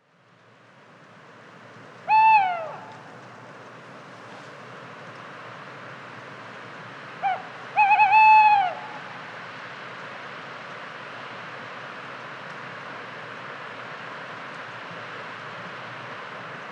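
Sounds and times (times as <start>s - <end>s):
tawny owl giving harsh harmonic calls: 2.0s - 3.1s, 7.2s - 9.2s.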